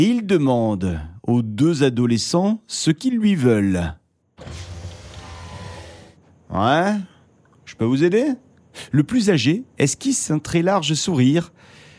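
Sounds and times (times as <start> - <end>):
speech: 0.0 - 4.7, 6.5 - 7.1, 7.7 - 11.8
electric car window motor rolling partly down: 4.4 - 6.2.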